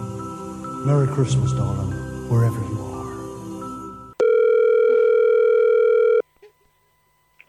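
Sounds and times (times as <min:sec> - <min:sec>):
speech: 0:00.9 - 0:02.8
electronic telephone ring tone of an unanswered call: 0:04.2 - 0:06.3.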